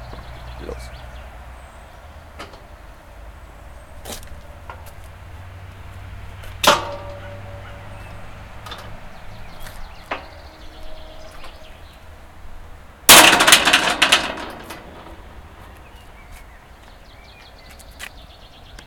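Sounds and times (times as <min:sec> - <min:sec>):
village cemetery gate opening and closing: 0:02.3 - 0:02.9, 0:06.2 - 0:12.1, 0:13.0 - 0:16.0.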